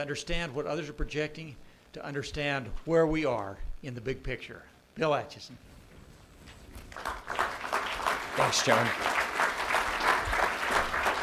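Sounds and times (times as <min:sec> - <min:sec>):
speech: 0:00.0 - 0:05.7, 0:08.5 - 0:09.2
audience applause: 0:06.9 - 0:11.2.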